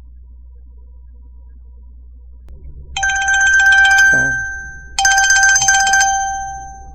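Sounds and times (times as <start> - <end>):
1950s-style dial telephone ringing harshly: 3.0 - 6.9.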